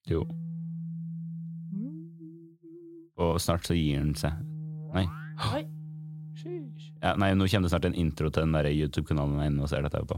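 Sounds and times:
low-pitched phone water-ejection tone: 0:00.0 - 0:09.5
speech: 0:00.1 - 0:00.4, 0:03.2 - 0:05.7, 0:07.0 - 0:10.1
higher tone sliding upward: 0:01.5 - 0:08.3.

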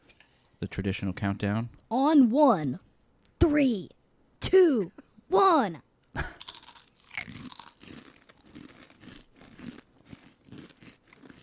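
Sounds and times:
speech: 0:00.6 - 0:02.9, 0:03.5 - 0:06.4
crunching kettle-cooked barbecue potato chips: 0:06.4 - 0:11.4.

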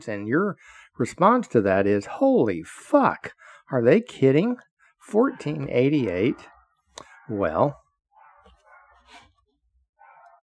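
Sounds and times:
speech: 0:00.0 - 0:06.5, 0:07.3 - 0:07.8
dog barking: 0:05.2 - 0:09.3, 0:10.0 - 0:10.4.

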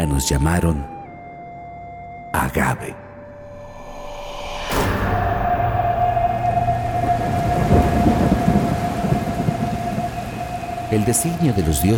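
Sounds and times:
speech: 0:00.0 - 0:00.9, 0:02.3 - 0:03.0, 0:10.9 - 0:11.9
sharp crack of thunder: 0:03.6 - 0:11.9
steady rain: 0:05.6 - 0:11.9.

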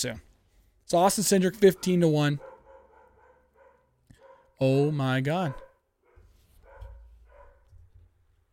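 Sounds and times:
speech: 0:00.0 - 0:00.3, 0:00.9 - 0:02.5, 0:04.6 - 0:05.6
dogs barking: 0:01.6 - 0:04.6, 0:05.3 - 0:07.7.

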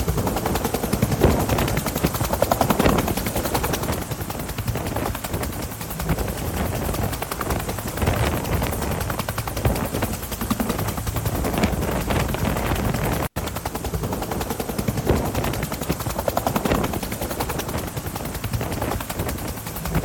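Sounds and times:
helicopter rotor noise: 0:00.0 - 0:20.0.

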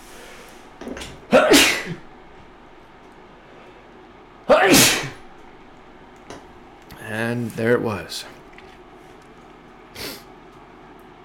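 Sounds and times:
person sneezing loudly: 0:01.3 - 0:02.0, 0:04.5 - 0:05.2
speech: 0:07.3 - 0:08.4
faint sniff: 0:10.0 - 0:10.3.

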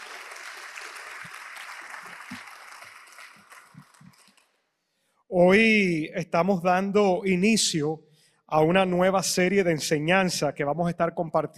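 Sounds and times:
congregation applauding: 0:00.0 - 0:04.6
speech: 0:05.3 - 0:11.5.

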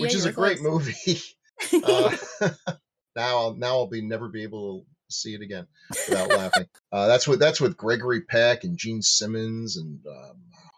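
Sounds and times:
laughter: 0:00.0 - 0:04.7, 0:05.3 - 0:10.0
speech: 0:00.0 - 0:10.7
person coughing: 0:01.8 - 0:02.7, 0:06.0 - 0:06.6.

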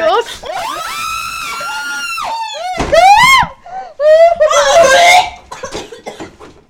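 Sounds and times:
several high-pitched voices shrieking together: 0:00.5 - 0:05.4.

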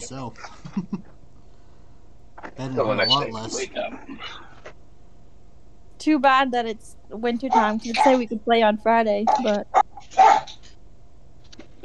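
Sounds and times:
laughter: 0:00.0 - 0:01.0
speech: 0:00.0 - 0:01.2, 0:02.6 - 0:04.5, 0:06.0 - 0:10.5
single short sharp dog bark: 0:09.3 - 0:10.6.

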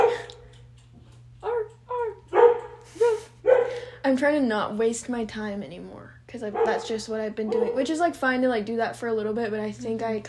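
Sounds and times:
dog barking: 0:00.0 - 0:00.4, 0:01.5 - 0:02.8, 0:03.4 - 0:03.8, 0:06.5 - 0:07.8
faint electrical hum: 0:00.0 - 0:10.2
speech: 0:04.1 - 0:10.2.

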